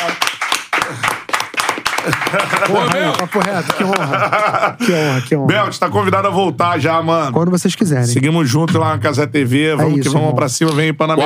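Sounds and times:
small group clapping: 0.0s - 4.8s
laughter: 1.9s - 5.3s
speech: 2.1s - 11.2s.

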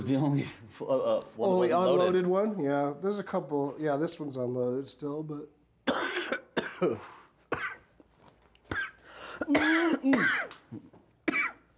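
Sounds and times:
speech: 0.0s - 5.6s, 6.8s - 7.8s, 9.4s - 10.9s
harsh hacking coughs after smoking: 5.8s - 8.0s, 8.7s - 11.7s.

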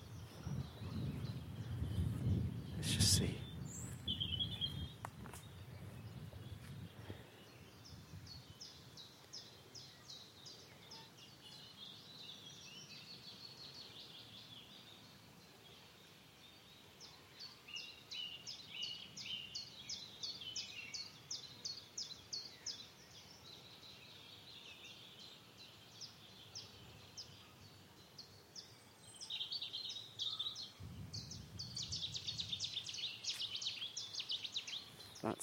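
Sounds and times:
light wind rumble: 0.0s - 9.0s, 30.7s - 33.2s
Cetti's warbler singing: 0.0s - 35.4s
speech: 2.8s - 3.5s.

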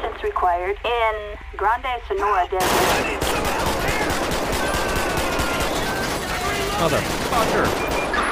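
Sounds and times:
speech: 0.2s - 3.5s, 6.8s - 8.0s
automatic gunfire in a police-simulation video game desert shootout: 2.6s - 8.2s.

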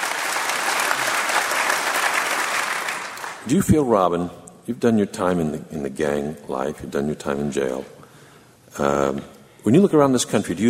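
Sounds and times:
sizable audience applauding: 0.0s - 3.5s
speech: 3.4s - 8.0s, 8.7s - 10.6s.

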